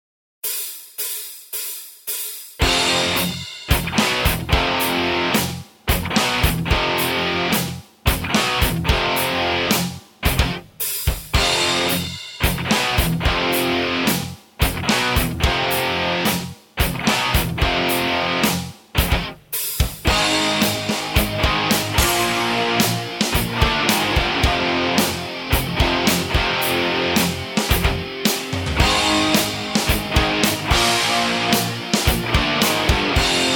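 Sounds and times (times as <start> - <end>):
bass metal backing track: 2.6 - 33.5.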